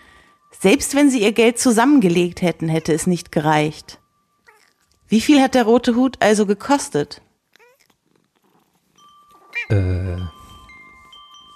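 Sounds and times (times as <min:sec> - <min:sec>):
speech: 0:00.6 - 0:04.0, 0:05.1 - 0:07.2, 0:09.7 - 0:10.4
cat meowing: 0:04.5 - 0:04.8, 0:07.5 - 0:08.6, 0:09.4 - 0:09.7.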